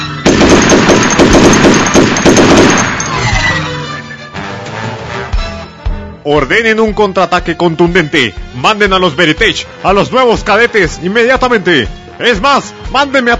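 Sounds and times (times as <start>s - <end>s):
machine-gun fire in a battle attack: 0.3s - 3.4s
gunshots: 0.3s - 3.5s
speech: 6.3s - 13.3s.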